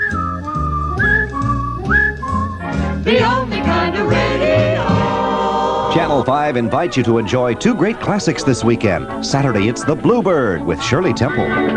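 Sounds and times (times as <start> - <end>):
person whistling a bright melody: 0.0 - 3.0
full musical accompaniment: 0.0 - 11.7
speech: 6.0 - 11.7.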